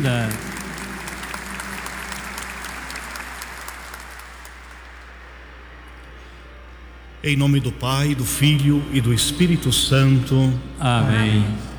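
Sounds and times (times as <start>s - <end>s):
audience applauding: 0.0s - 6.0s
speech: 7.2s - 11.7s.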